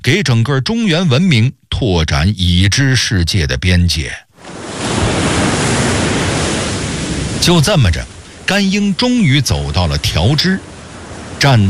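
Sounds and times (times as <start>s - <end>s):
speech: 0.1s - 4.3s, 7.4s - 10.7s, 11.4s - 11.6s
sea waves washing onto the shore of a vast open sea: 4.3s - 11.6s.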